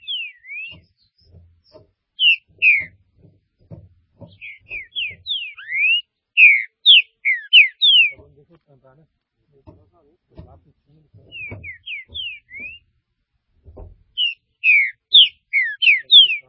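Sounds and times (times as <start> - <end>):
Green-winged saltator singing: 0.0 - 0.9, 2.2 - 3.0, 4.3 - 8.2, 11.3 - 12.9, 14.2 - 16.4.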